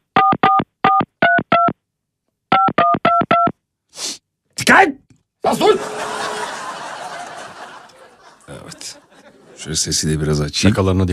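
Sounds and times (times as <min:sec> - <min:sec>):
touch-tone beeps as a phone number is dialed: 0:00.2 - 0:01.8, 0:02.5 - 0:03.5
speech: 0:04.8 - 0:06.2, 0:09.6 - 0:11.1
laughter: 0:05.5 - 0:09.9.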